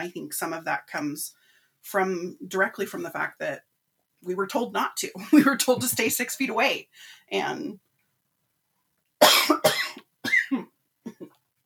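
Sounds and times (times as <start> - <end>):
speech: 0.0 - 7.9
person coughing: 9.2 - 11.3.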